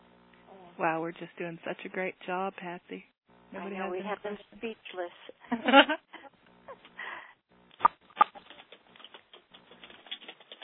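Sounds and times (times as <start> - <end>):
speech: 0.8 - 6.1
typing on a computer keyboard: 8.5 - 10.6.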